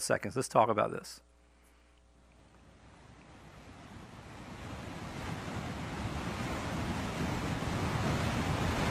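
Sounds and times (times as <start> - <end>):
speech: 0.0 - 1.3
wind buffeting the microphone: 2.6 - 8.8
roar of rushing floodwater from a swollen river: 2.7 - 8.8.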